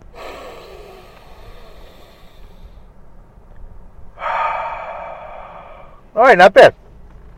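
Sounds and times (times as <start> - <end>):
deep breathing: 0.0 - 3.0, 4.1 - 6.2
speech: 6.2 - 6.8.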